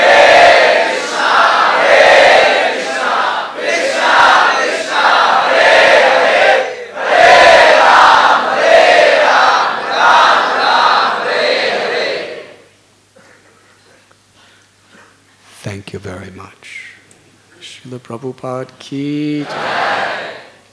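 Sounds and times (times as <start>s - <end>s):
large crowd chanting in unison: 0.0s - 12.6s, 19.4s - 20.6s
speech: 18.1s - 20.2s.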